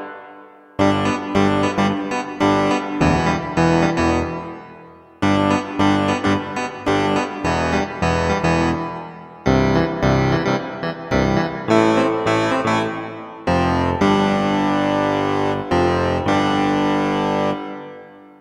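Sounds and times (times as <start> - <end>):
power keys on a Kawai K1 synthesizer: 0.8 - 17.8.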